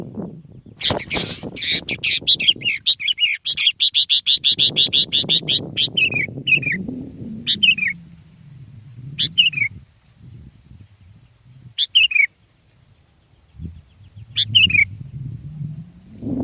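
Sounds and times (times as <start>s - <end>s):
sooty-headed bulbul chattering and whistling: 0.8s - 6.8s, 7.4s - 8.0s, 9.1s - 9.7s, 11.8s - 12.3s, 13.5s - 15.3s
low background rumble: 5.7s - 11.8s, 12.7s - 16.4s.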